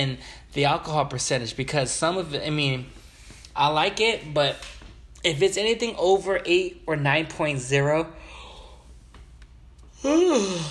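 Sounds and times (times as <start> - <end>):
speech: 0.0 - 3.0, 3.6 - 8.2, 10.0 - 10.6
person yawning: 9.9 - 10.6.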